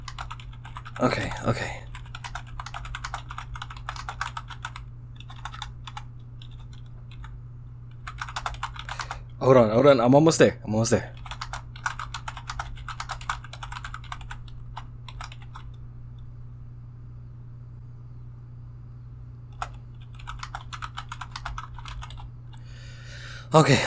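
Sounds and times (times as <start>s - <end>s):
typing on a computer keyboard: 0.0s - 9.3s, 11.1s - 15.8s, 19.5s - 22.6s
low steady hum: 0.0s - 23.8s
speech: 1.0s - 1.9s, 9.4s - 11.2s, 23.6s - 23.8s.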